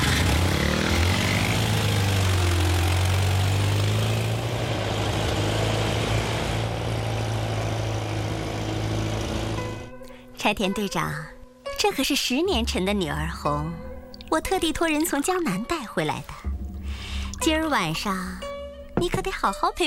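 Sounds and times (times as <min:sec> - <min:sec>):
car engine running as the car pulls away: 0:00.0 - 0:09.9
speech: 0:10.5 - 0:16.5, 0:17.4 - 0:18.4, 0:19.0 - 0:19.8.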